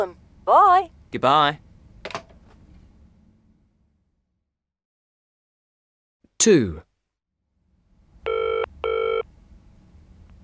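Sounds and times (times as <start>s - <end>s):
speech: 0.0s - 1.6s, 6.4s - 6.9s
telephone ringing with electronic trill: 8.3s - 9.3s.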